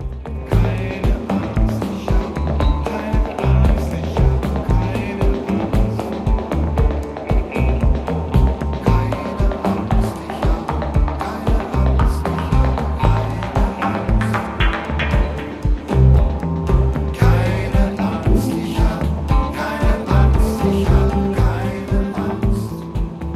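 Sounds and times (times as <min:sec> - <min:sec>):
distorted guitars: 0:00.0 - 0:23.3
driving drums: 0:00.0 - 0:23.3
loud rock song: 0:00.0 - 0:23.3
steady bass: 0:00.0 - 0:23.3.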